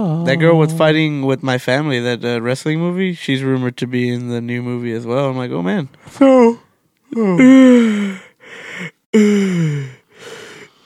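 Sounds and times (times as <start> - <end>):
speech: 0.0 - 10.0
long loud yawn: 7.1 - 10.8.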